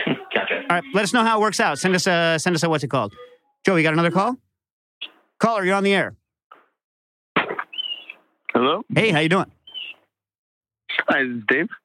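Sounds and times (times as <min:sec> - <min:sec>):
speech: 0:00.4 - 0:04.4, 0:05.0 - 0:06.2, 0:08.6 - 0:09.6, 0:11.1 - 0:11.8
bird chirping over a phone line: 0:07.6 - 0:08.4, 0:09.5 - 0:10.1.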